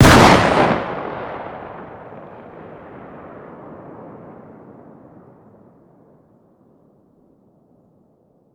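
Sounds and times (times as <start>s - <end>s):
distant 12 gauge shotgun firing outdoors: 0.0s - 4.5s.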